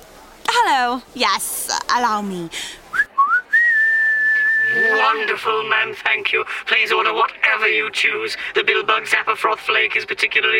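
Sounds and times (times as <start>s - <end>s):
speech: 0.8s - 2.8s, 4.7s - 10.5s
person whistling: 2.9s - 5.4s.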